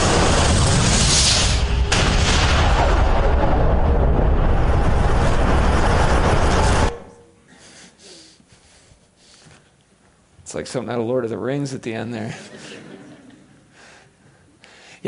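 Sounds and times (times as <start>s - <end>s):
massive explosion sound effect depicting the Big Bang: 0.0s - 7.2s
speech: 10.6s - 12.7s
laughter: 12.2s - 13.7s.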